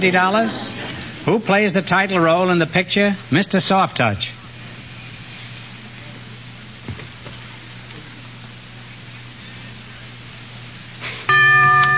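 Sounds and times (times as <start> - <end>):
speech: 0.0 - 4.3
quiet hum: 0.0 - 11.9
quiz show bell ringing to signal time is up: 11.3 - 11.9.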